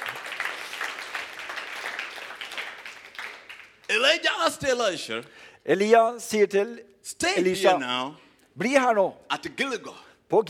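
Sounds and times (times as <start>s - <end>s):
crowd applauding in a large room: 0.0s - 3.9s
speech: 4.0s - 10.4s.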